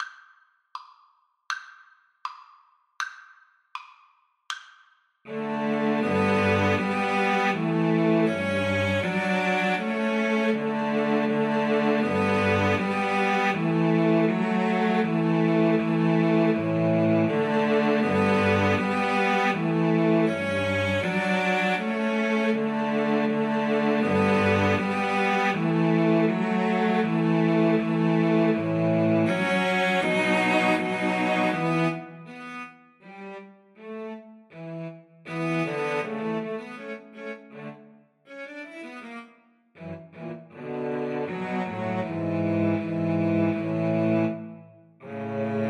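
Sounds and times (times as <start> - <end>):
cello piece: 5.3 - 45.6.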